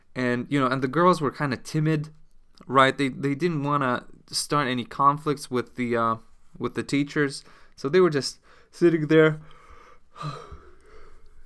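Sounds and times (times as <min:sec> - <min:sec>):
speech: 0:00.4 - 0:09.6, 0:10.2 - 0:10.6
person yawning: 0:10.2 - 0:10.8.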